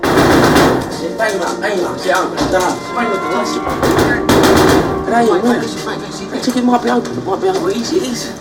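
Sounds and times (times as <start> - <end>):
metallic bashing on a steel sheet covering a door: 0.0 - 6.0
men shouting and talking: 0.9 - 8.3.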